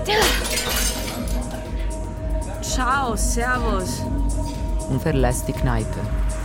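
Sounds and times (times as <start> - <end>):
drinking glass thrown and shattering in a pub: 0.0 - 1.7
tinkling shards of a drinking glass: 0.0 - 1.7
speech: 2.8 - 6.3.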